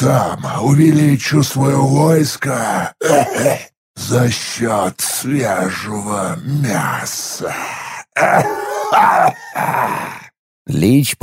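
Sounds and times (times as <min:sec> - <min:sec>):
speech: 0:00.0 - 0:11.2
hoarse rasping coughs from an undead lich: 0:02.8 - 0:03.7, 0:08.0 - 0:10.3.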